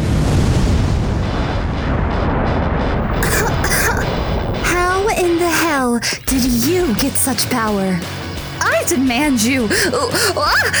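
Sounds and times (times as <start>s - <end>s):
energy blast explosion: 0.0s - 5.4s
sharp crackling bursts: 0.0s - 8.6s
speech: 5.9s - 8.2s, 8.8s - 10.7s
laughter: 9.6s - 10.7s.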